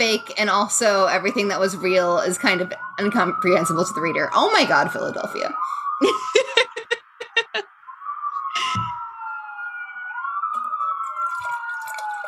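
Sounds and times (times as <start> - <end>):
speech: 0.0 - 6.5
police car siren wailing outside by a window: 0.0 - 12.2
people laughing: 6.0 - 7.6.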